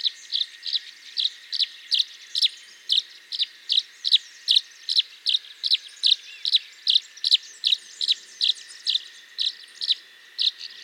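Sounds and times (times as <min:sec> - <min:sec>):
Tree swallow Tachycineta bicolor calling with short bright chirps: 0:00.0 - 0:10.8.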